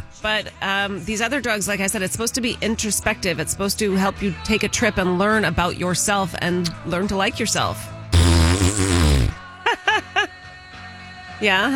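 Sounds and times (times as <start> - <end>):
speech: 0.2 - 7.9, 11.4 - 11.7
loud buzzy fart noise blown with the mouth: 8.2 - 9.4.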